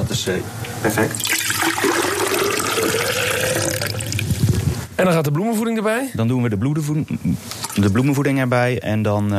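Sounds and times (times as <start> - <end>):
speech: 0.2 - 1.7, 5.0 - 9.3
water pouring into a container for a flower test: 1.2 - 4.4.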